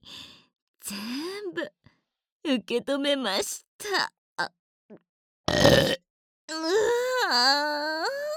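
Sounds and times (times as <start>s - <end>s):
speech: 0.9s - 1.8s, 2.4s - 8.2s
loud burp: 5.5s - 6.0s.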